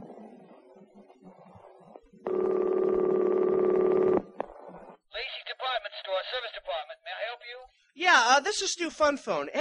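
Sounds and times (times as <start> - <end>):
electronic phone key dialing tone beeps: 2.3 - 4.4
long steady phone ringing tone: 2.3 - 4.7
speech: 8.4 - 9.5.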